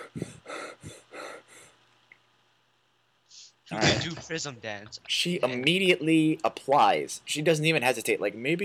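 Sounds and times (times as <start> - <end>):
voice imitating heavy raspy breathing: 0.0 - 1.9
speech: 3.7 - 8.6.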